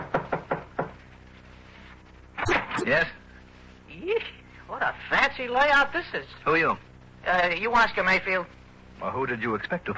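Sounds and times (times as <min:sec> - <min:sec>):
firm knocking on a door: 0:00.0 - 0:01.0
speech: 0:02.8 - 0:03.2, 0:04.0 - 0:09.9.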